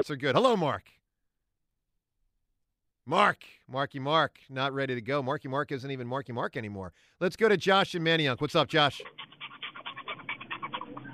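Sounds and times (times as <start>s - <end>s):
speech: 0.0s - 1.0s, 3.1s - 9.4s
dog panting: 8.9s - 11.1s.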